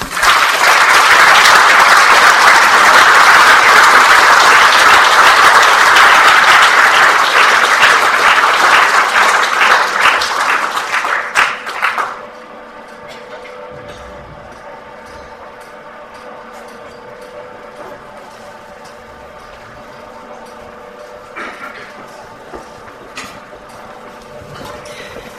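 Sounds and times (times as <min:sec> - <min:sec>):
audience applause: 0:00.0 - 0:12.4.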